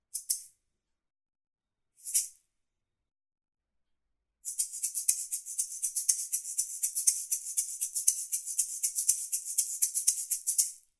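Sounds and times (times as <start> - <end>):
shaker: 0.2 - 0.5, 2.0 - 2.4, 4.4 - 10.9.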